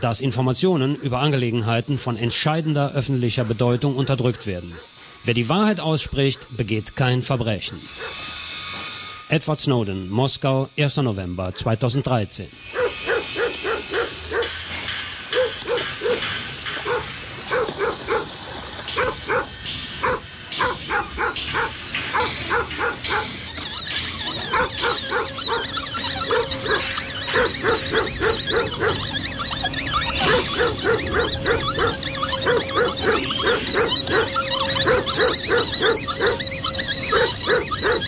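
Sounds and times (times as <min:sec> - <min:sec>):
speech: 0:00.0 - 0:08.4, 0:09.3 - 0:13.0
many dogs barking and yipping at a dog shelter: 0:00.4 - 0:06.6, 0:07.9 - 0:08.3, 0:12.6 - 0:18.3, 0:18.9 - 0:38.0.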